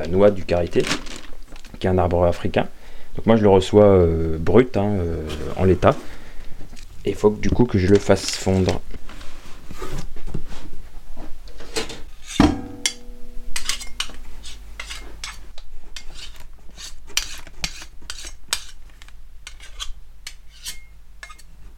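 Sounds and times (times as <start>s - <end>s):
speech: 0.0s - 1.0s, 1.8s - 6.1s, 7.0s - 9.1s
utensils clinking and scraping while raw shea butter is weighed: 12.0s - 21.6s
metallic clank with a short ringing tail: 12.3s - 14.5s.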